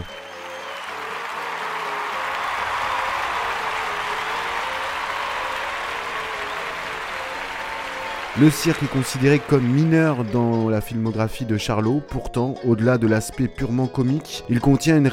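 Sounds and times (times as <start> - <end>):
audience applause: 0.0 - 10.9
speech: 8.4 - 15.1.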